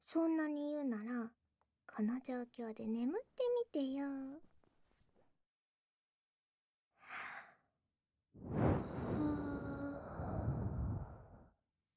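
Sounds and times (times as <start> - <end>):
speech: 0.1 - 4.5
soft airy breath exhale with a faint voiced tone: 8.4 - 11.5.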